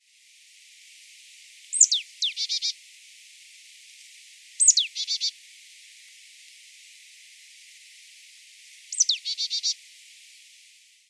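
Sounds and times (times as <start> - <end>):
marsh tit Poecile palustris calls: 1.8 - 2.7, 4.6 - 5.3, 9.0 - 9.8.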